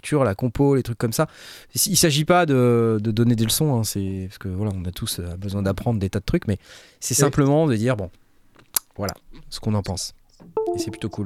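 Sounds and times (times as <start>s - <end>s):
speech: 0.0s - 8.2s, 9.0s - 11.2s
computer device disconnect and reconnect two-note chime: 10.6s - 11.2s.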